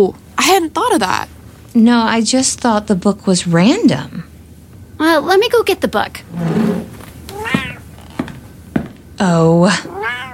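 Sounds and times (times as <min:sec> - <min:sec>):
speech: 0:00.0 - 0:04.3, 0:05.0 - 0:06.8, 0:09.2 - 0:10.0
cat meowing: 0:07.3 - 0:07.9, 0:09.8 - 0:10.3.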